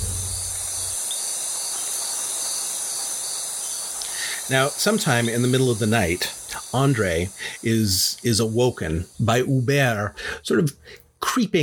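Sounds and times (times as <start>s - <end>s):
low rumble: 0.0s - 1.0s
crickets chirping at night: 0.0s - 11.1s
speech: 4.5s - 11.6s.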